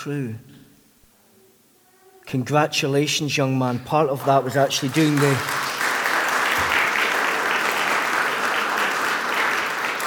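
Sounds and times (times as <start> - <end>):
speech: 0.0 - 0.5, 2.3 - 5.6
large audience applauding: 4.1 - 10.0.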